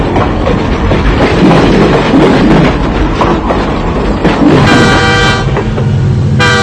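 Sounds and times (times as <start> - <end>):
loud steady rumble of a passing train: 0.0 - 6.6
old locomotive horn tooting: 4.6 - 5.6, 6.4 - 6.6.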